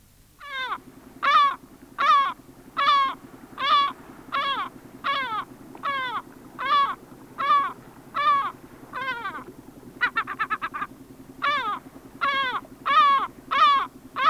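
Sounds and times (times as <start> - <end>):
steady low hum: 0.0 - 14.2
Lesser Black-backed Gull calling with harsh nasal laughing notes in Sweden: 0.4 - 14.2.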